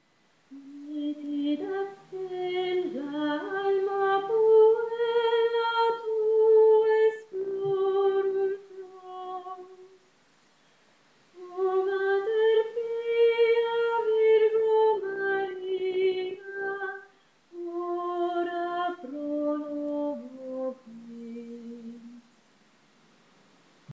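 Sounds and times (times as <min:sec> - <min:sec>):
contralto voices singing: 0:00.5 - 0:10.0, 0:11.4 - 0:22.3.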